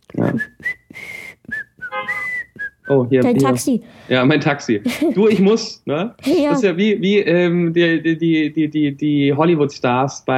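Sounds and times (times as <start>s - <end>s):
person whistling a short bright melody: 0.2s - 3.1s
breaths between whistled phrases: 0.8s - 1.5s, 3.8s - 4.2s
speech: 2.9s - 10.3s
laughter: 4.8s - 5.6s.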